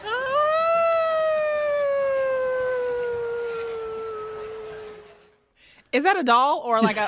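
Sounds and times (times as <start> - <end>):
woman imitating an animal's howl: 0.0 - 5.2
speech: 5.9 - 7.0.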